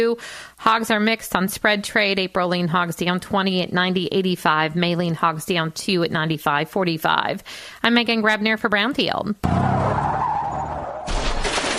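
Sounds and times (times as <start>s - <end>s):
speech: 0.0s - 10.1s
car tires skidding before a collision with a deer: 9.4s - 11.1s.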